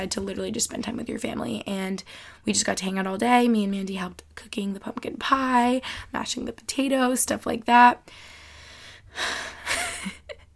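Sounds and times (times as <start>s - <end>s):
speech: 0.0s - 8.4s, 9.1s - 10.2s
deep breath: 8.1s - 9.7s.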